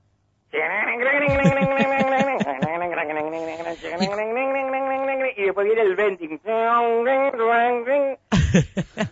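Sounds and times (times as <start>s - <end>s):
voice imitating a rock-and-roll guitar chord riff: 0.7s - 5.2s
laughter: 1.2s - 2.8s, 3.4s - 4.3s, 8.3s - 9.1s
speech: 5.6s - 9.1s.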